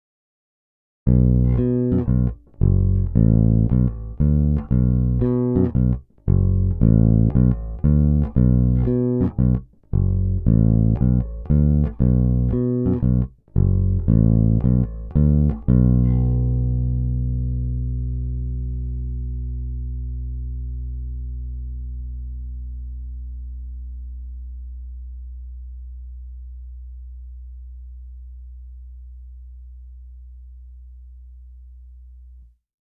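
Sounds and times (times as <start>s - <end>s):
playing over a pickup: 1.1s - 30.2s.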